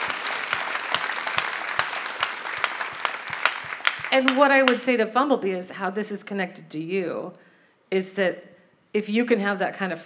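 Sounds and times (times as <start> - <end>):
audience applause: 0.0 - 4.8
speech: 4.1 - 10.0.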